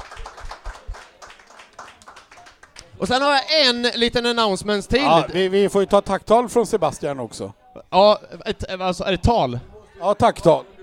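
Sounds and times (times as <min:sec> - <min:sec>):
pub audience clapping at a live event: 0:00.0 - 0:03.0
speech: 0:03.0 - 0:10.7.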